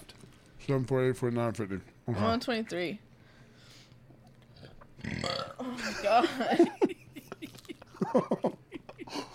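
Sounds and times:
speech: 0:00.7 - 0:03.1, 0:06.0 - 0:07.0, 0:08.1 - 0:08.6
burping: 0:04.5 - 0:05.8
throaty vocal noises: 0:04.5 - 0:05.8
laughter: 0:05.8 - 0:09.3.

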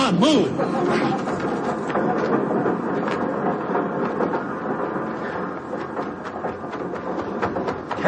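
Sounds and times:
rail cars clattering over the tracks: 0:00.0 - 0:08.0
train rumbling along: 0:00.0 - 0:08.0.

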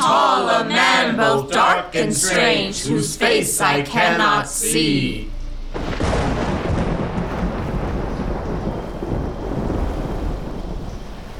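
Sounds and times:
speech: 0:00.6 - 0:06.1
thunder rumbling in a storm: 0:05.6 - 0:11.3
steady rain hissing: 0:05.7 - 0:11.3.

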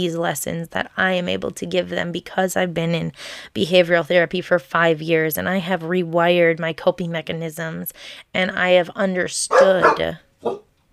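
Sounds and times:
speech: 0:00.0 - 0:10.6
dogs barking: 0:09.5 - 0:10.7.

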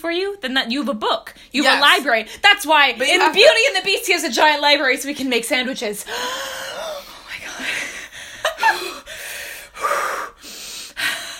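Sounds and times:
speech: 0:00.0 - 0:06.8
person taking calming breaths: 0:06.1 - 0:11.3.

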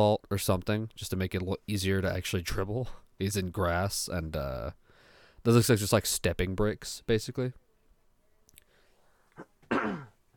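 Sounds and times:
speech: 0:00.0 - 0:04.8, 0:05.4 - 0:07.6
throat clearing: 0:09.4 - 0:10.2.

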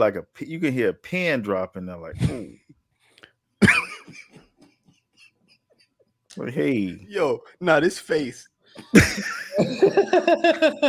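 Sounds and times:
speech: 0:00.0 - 0:02.6, 0:06.4 - 0:10.8
single deep heavy cough: 0:03.6 - 0:04.7, 0:08.8 - 0:10.1
laughter: 0:08.8 - 0:10.8.

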